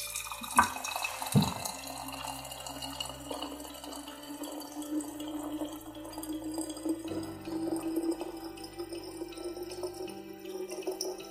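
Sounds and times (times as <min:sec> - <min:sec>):
water pouring into a container: 0:00.0 - 0:11.2.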